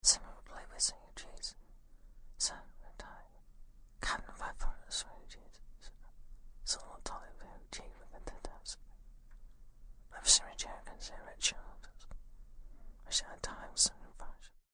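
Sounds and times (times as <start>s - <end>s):
whispers: 0.0s - 1.6s, 2.4s - 3.4s, 4.0s - 8.9s, 10.1s - 12.1s, 13.0s - 14.6s.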